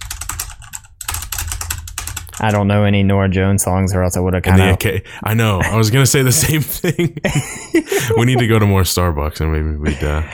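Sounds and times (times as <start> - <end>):
computer keyboard keys clicking: 0.0 - 2.4
speech: 2.4 - 10.3
laughter: 4.6 - 10.3.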